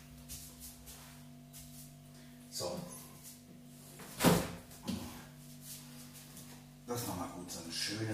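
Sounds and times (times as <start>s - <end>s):
faint steady hum: 0.0s - 8.1s
refrigerator door closing: 4.2s - 4.6s
speech: 6.9s - 8.1s.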